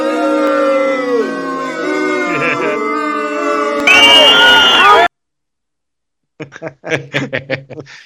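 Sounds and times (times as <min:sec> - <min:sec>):
small group of voices booing and jeering: 0:00.0 - 0:05.1
laughter: 0:02.3 - 0:03.0, 0:06.4 - 0:08.0.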